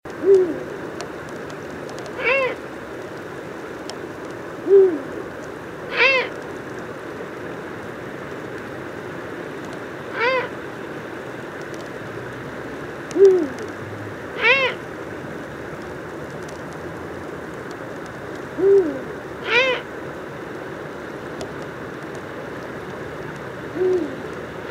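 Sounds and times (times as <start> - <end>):
eagle owl song: 0.2 - 0.8, 2.2 - 2.6, 4.6 - 5.2, 5.9 - 6.4, 10.1 - 10.6, 13.1 - 13.7, 14.4 - 14.8, 18.6 - 19.9, 23.7 - 24.7
eagle owl cries: 2.2 - 2.6, 5.9 - 6.4, 10.1 - 10.6, 14.4 - 14.8, 18.6 - 19.9, 23.8 - 24.7.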